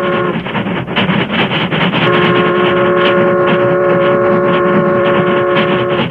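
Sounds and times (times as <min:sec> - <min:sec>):
steady whistle-like tone: 0:00.0 - 0:00.4, 0:02.0 - 0:06.0
steam train roaring past: 0:00.0 - 0:06.0.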